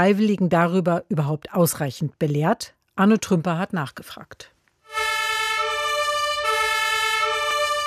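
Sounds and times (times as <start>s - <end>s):
speech: 0.0s - 4.5s
fire brigade engine siren responding through heavy traffic: 4.9s - 7.8s.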